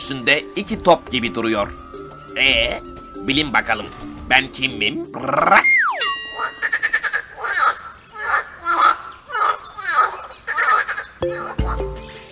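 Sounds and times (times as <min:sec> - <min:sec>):
speech: 0:00.1 - 0:05.8
frog croaking: 0:05.1 - 0:11.8
bright chime: 0:05.8 - 0:06.8.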